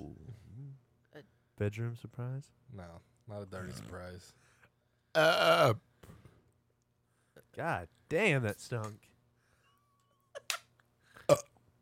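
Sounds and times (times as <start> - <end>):
speech: 1.2 - 4.5, 5.2 - 6.2, 7.6 - 9.1
loud forceful burp: 5.2 - 5.8, 11.3 - 11.5.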